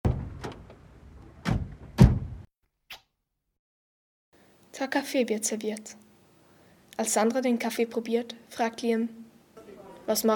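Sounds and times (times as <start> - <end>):
car door opening: 0.1 - 2.4
speech: 4.8 - 6.0, 7.0 - 9.2, 10.1 - 10.3.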